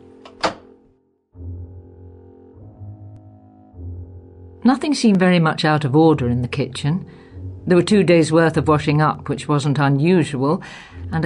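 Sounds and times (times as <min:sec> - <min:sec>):
back door of a bungalow unlocked with a spare key: 0:00.2 - 0:00.8
low steady droning hum: 0:01.4 - 0:10.2
speech: 0:04.6 - 0:11.2.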